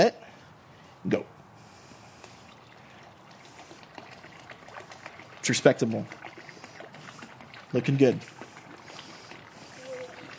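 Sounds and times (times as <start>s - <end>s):
speech: 0.0s - 0.2s, 1.0s - 1.3s, 5.5s - 6.2s, 7.7s - 8.4s
liquid being poured: 2.2s - 10.3s.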